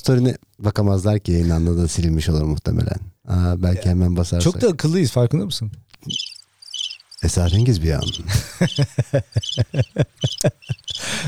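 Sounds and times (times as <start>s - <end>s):
speech: 0.0s - 6.3s, 7.2s - 11.2s
insect chirps on a summer night: 6.0s - 11.2s
laughter: 7.2s - 11.2s.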